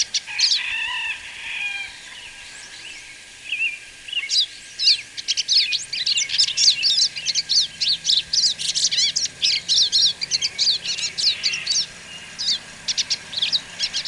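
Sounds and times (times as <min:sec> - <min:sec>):
bird song of rapid high twittering phrases and sharp chirps: 0:00.0 - 0:14.0.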